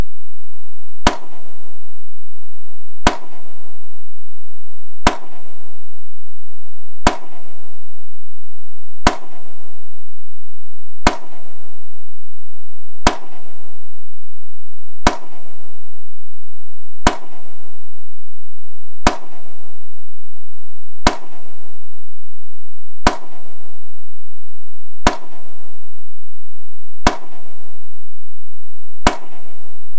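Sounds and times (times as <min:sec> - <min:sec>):
high level pile driving at a ferry terminal by the ocean: 0:01.0 - 0:02.0, 0:03.0 - 0:04.1, 0:05.0 - 0:06.1, 0:07.0 - 0:08.0, 0:09.0 - 0:10.0, 0:11.0 - 0:12.0, 0:13.0 - 0:14.0, 0:15.0 - 0:16.0, 0:17.0 - 0:18.0, 0:19.0 - 0:20.0, 0:21.0 - 0:22.0, 0:23.0 - 0:24.0, 0:25.0 - 0:26.0, 0:27.0 - 0:28.0, 0:29.0 - 0:29.9.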